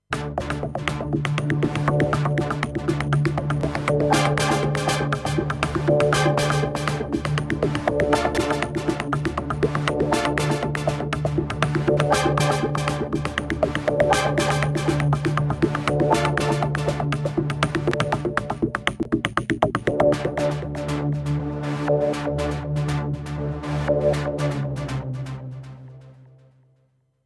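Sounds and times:
funky filtered music: 0:00.1 - 0:26.4.

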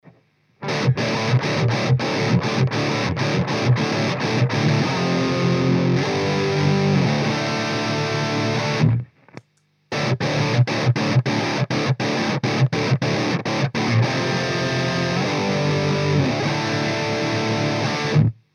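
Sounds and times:
electric guitar riff through a guitar amplifier: 0:00.6 - 0:09.2, 0:09.9 - 0:18.4.

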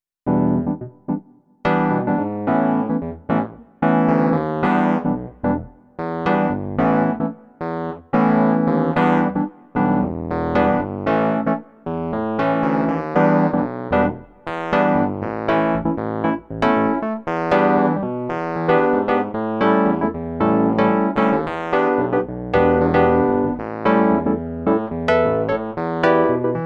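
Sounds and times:
Wurlitzer electric piano: 0:00.2 - 0:26.6.

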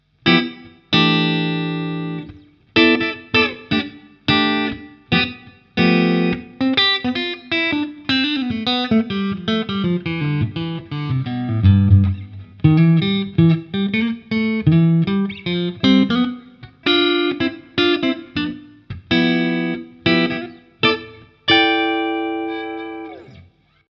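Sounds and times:
clean electric guitar on neck pickup: 0:00.0 - 0:23.9.

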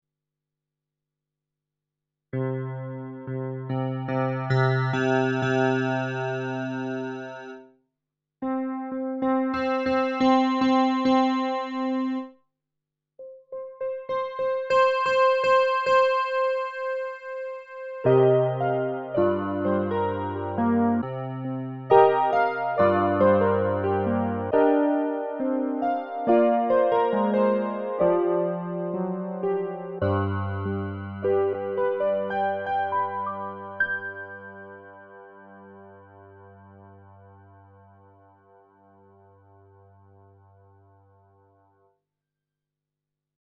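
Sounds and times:
K150 touch piano: 0:02.4 - 0:07.6, 0:08.4 - 0:12.3, 0:13.2 - 0:40.9.

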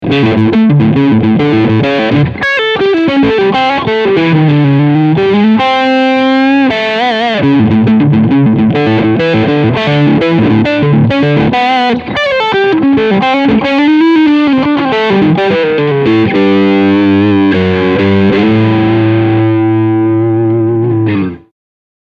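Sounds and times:
crunch guitar tone on bridge and middle pickups: 0:00.0 - 0:21.5.

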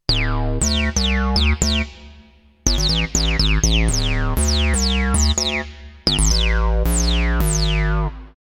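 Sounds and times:
acid bass synth: 0:00.1 - 0:08.4.

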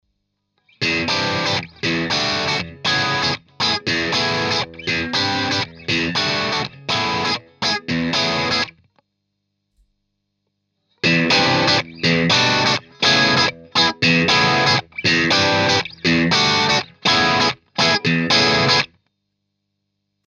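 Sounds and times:
mid gain overdriven electric guitar playing complex chords: 0:00.8 - 0:08.8, 0:11.0 - 0:18.9.

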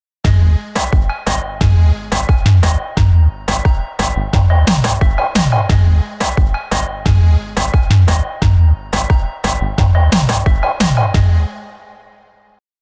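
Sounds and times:
reggaeton beat on Zoom ARQ: 0:00.2 - 0:11.8.

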